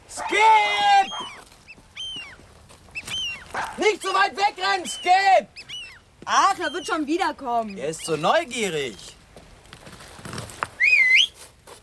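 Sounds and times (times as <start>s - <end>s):
speech: 3.8s - 5.6s, 6.3s - 9.0s
person whistling a single note: 10.8s - 11.4s.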